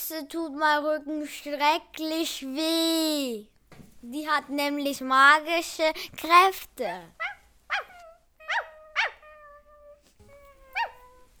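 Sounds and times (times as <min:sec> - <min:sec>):
speech: 0:00.1 - 0:07.8
dog barking: 0:07.2 - 0:09.3, 0:10.7 - 0:11.3
dog whining: 0:07.2 - 0:11.3.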